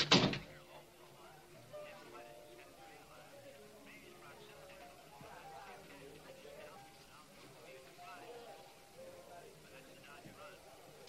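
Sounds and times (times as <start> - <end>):
door shutting with a solid thump: 0.0 - 0.5
faint voices: 0.0 - 11.0.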